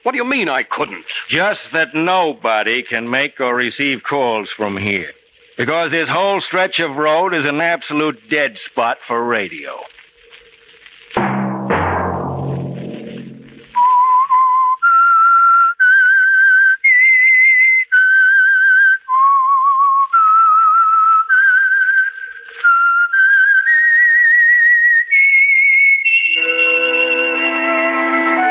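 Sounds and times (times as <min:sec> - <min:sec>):
speech: 0:00.0 - 0:09.9
fuller musical accompaniment: 0:11.2 - 0:13.8, 0:26.3 - 0:28.4
short loud musical sting: 0:11.2 - 0:13.8
whistled theme melody: 0:13.7 - 0:28.4.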